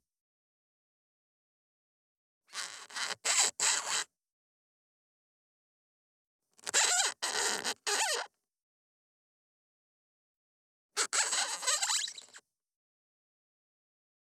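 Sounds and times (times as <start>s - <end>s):
medium balloon squeaks and creaks: 2.5s - 4.0s, 6.6s - 8.3s, 11.0s - 12.4s.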